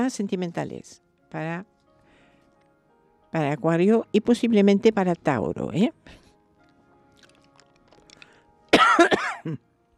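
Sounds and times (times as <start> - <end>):
speech: 0.0 - 1.7, 3.3 - 6.2, 9.0 - 9.7
person coughing from the cold: 8.7 - 9.6.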